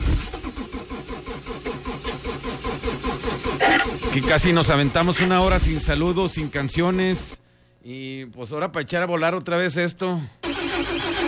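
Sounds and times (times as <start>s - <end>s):
car engine cranking and turning over: 0.0s - 5.1s
speech: 3.6s - 11.0s.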